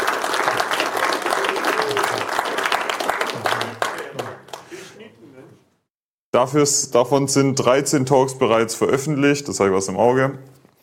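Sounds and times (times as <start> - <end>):
audience applause: 0.0 - 4.9
speech: 6.4 - 10.6.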